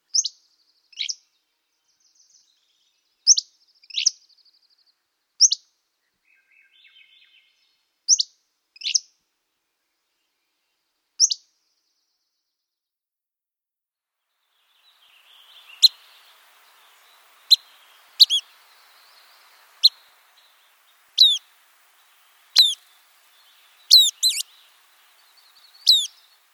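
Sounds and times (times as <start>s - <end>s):
Hammond's flycatcher calling: 14.5s - 26.5s.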